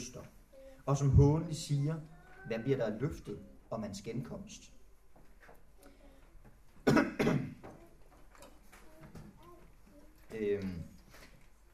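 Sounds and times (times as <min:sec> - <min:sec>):
speech: 0:00.1 - 0:04.8, 0:10.3 - 0:10.9
sharp coughs: 0:06.8 - 0:07.6.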